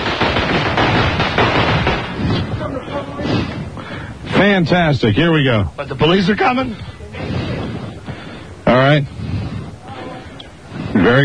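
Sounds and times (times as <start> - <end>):
fireworks exploding in booms and crackles: 0.0 - 2.8
faint voices murmuring: 2.2 - 11.2
speech: 4.4 - 7.0, 8.9 - 9.2, 11.1 - 11.2.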